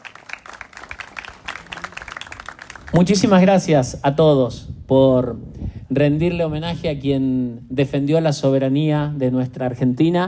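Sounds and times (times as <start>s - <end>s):
applause at a public tribute ceremony in Argentina: 0.0s - 3.5s
speech: 2.9s - 10.2s.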